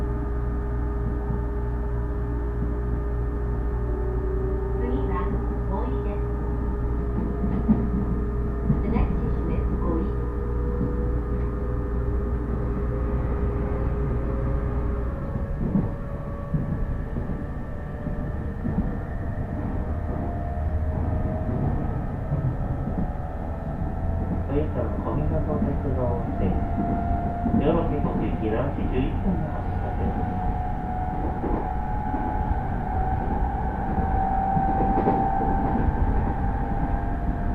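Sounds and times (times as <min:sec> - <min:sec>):
rumble inside a rapid train on a coastal line: 0:00.0 - 0:37.5.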